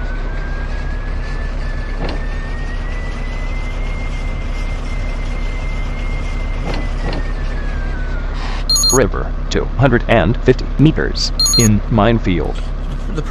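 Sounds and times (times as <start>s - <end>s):
truck engine droning in a video game: 0.0s - 13.3s
speech: 9.0s - 13.3s.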